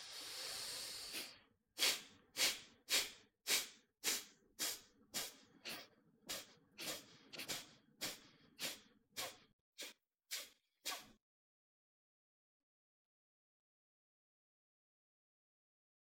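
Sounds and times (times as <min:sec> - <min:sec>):
hard forceful exhalations during a breathing exercise: 0:00.0 - 0:09.9.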